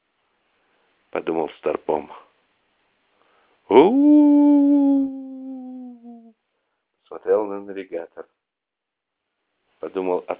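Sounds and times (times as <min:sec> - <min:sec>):
speech: 0:01.1 - 0:02.3, 0:03.7 - 0:05.2, 0:07.1 - 0:08.4, 0:09.8 - 0:10.3
dog howling: 0:03.8 - 0:06.1.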